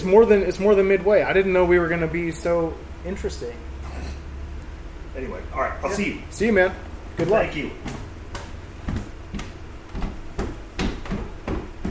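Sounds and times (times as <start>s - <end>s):
speech: 0.0s - 3.7s, 5.2s - 8.0s
faint hum: 0.0s - 11.8s
footsteps going down a flight of stairs: 7.1s - 11.8s.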